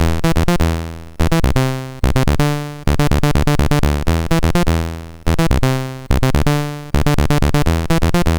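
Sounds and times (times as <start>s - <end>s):
MOS 6581 SID chip synth: 0.0s - 8.3s.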